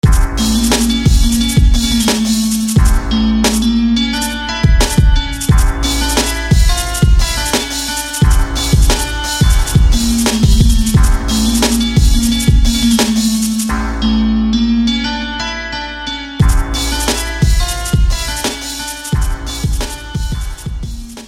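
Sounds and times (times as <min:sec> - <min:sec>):
ethnic harp music: 0:00.0 - 0:21.2.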